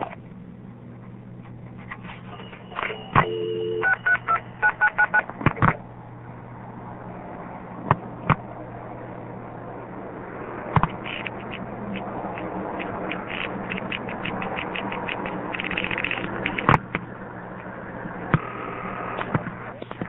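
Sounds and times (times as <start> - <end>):
steady telephone line hum: 0.0 - 20.0
touch-tone telephone dialing beeps: 2.4 - 5.2.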